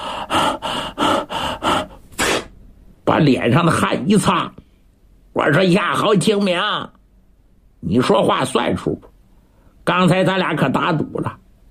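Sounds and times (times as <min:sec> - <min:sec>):
man imitating heavy panting after a fight: 0:00.0 - 0:02.5
speech: 0:03.2 - 0:04.6, 0:05.4 - 0:07.0, 0:07.8 - 0:09.1, 0:09.9 - 0:11.4.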